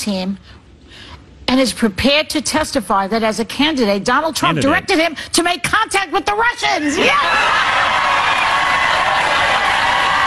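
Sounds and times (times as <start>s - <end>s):
speech: 0.0s - 8.0s
studio audience cheering and whooping: 7.1s - 10.2s.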